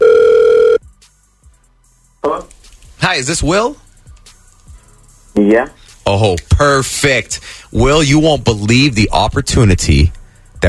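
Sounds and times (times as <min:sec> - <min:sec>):
telephone ringback tone on an outgoing call: 0:00.0 - 0:00.8
speech: 0:03.2 - 0:03.8, 0:05.4 - 0:10.6.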